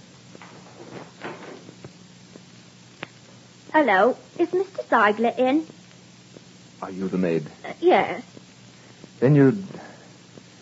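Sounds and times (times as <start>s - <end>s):
brief creaky scrape of a door opening: 0.4s - 1.7s
speech: 3.8s - 5.8s, 6.8s - 8.3s, 9.2s - 9.8s.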